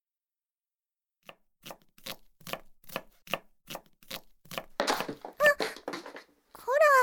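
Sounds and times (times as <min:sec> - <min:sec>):
kitchen knife chopping food on a cutting board: 0:01.2 - 0:05.3
busy kitchen clatter: 0:04.8 - 0:06.4.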